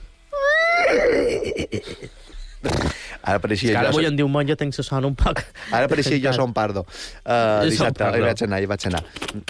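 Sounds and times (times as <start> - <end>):
person imitating a horse whinnying: 0.3 - 1.8
speech: 1.5 - 9.4.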